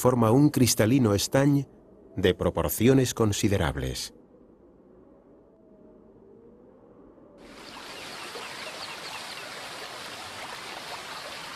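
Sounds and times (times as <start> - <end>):
speech: 0.0 - 4.2
mountain stream rushing: 7.5 - 11.5.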